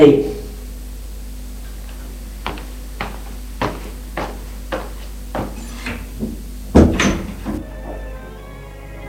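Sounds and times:
speech: 0:00.0 - 0:00.3
footsteps: 0:01.6 - 0:06.5
door creaking open: 0:05.5 - 0:08.3.

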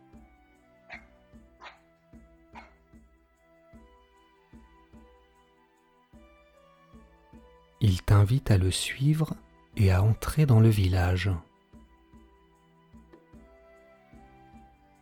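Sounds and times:
rhythmic music: 0:00.0 - 0:15.0
small white dog yipping: 0:00.9 - 0:01.9, 0:02.5 - 0:02.8
speech: 0:07.8 - 0:11.5.

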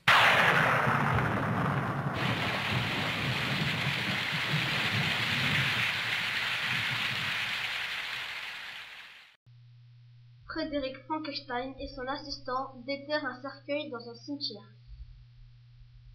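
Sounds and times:
heavy rain pouring down in a graveyard: 0:00.0 - 0:09.4
speech: 0:10.6 - 0:14.8.

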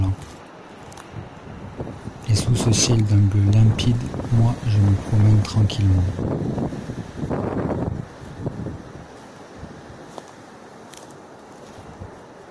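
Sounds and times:
strong whistling wind: 0:00.6 - 0:12.5
speech: 0:02.3 - 0:07.0.

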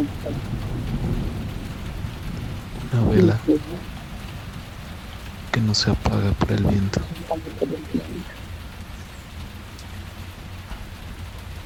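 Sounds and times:
deep rolling rumble of thunder: 0:00.0 - 0:05.6
rain pouring during a night storm in the desert: 0:00.0 - 0:11.6
speech: 0:02.9 - 0:04.0, 0:05.6 - 0:08.4.

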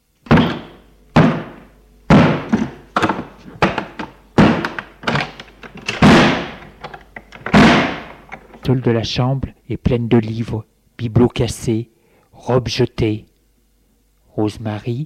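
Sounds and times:
door being battered and forced open: 0:00.3 - 0:05.3, 0:05.9 - 0:06.6, 0:07.4 - 0:08.2
speech: 0:08.7 - 0:13.3, 0:14.4 - 0:15.0.

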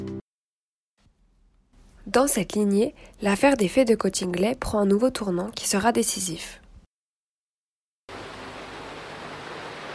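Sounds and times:
speech: 0:02.1 - 0:06.6
waterfall roaring: 0:08.1 - 0:09.9.

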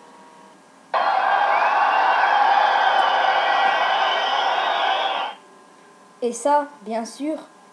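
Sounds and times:
large stadium crowd roar: 0:01.0 - 0:05.4
speech: 0:06.2 - 0:07.5.

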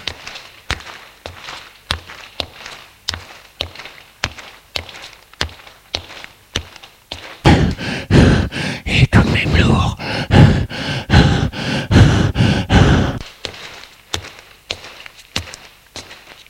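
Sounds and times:
footsteps descending stairs: 0:00.0 - 0:08.7, 0:10.0 - 0:16.4.

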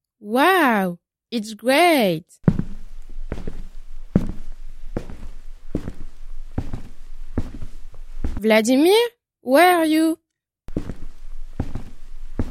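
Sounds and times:
speech: 0:00.2 - 0:02.5, 0:08.4 - 0:10.2
man's heavy footsteps going down wooden stairs: 0:02.4 - 0:08.4, 0:10.7 - 0:12.5.

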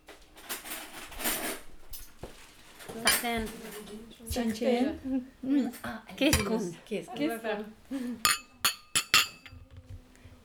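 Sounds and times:
speech: 0:03.0 - 0:08.4
glasses clinking in a toast: 0:06.3 - 0:06.7, 0:08.2 - 0:09.7.

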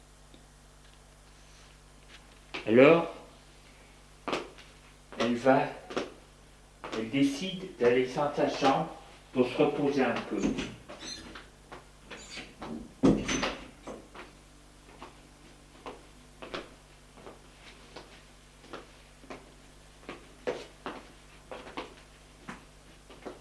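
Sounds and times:
speech: 0:02.6 - 0:03.2, 0:05.4 - 0:05.8, 0:07.0 - 0:10.8
bedroom door opening: 0:10.4 - 0:11.4, 0:12.1 - 0:13.6.

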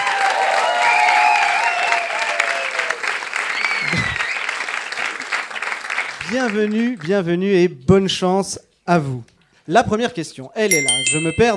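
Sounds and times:
people cheering: 0:00.0 - 0:05.3
audience applause: 0:00.0 - 0:06.8
whistles: 0:03.5 - 0:04.6
speech: 0:06.3 - 0:11.5.

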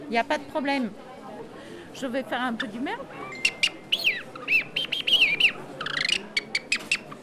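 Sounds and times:
speech: 0:00.1 - 0:01.1, 0:02.0 - 0:03.6
bird whistle imitating a songbird's call in Paris: 0:03.2 - 0:07.2.

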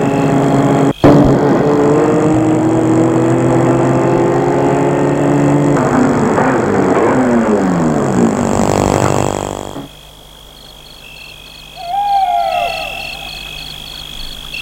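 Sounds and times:
large black car's loud engine slowing to a stop: 0:00.0 - 0:09.9
faint chirps: 0:09.0 - 0:14.6.

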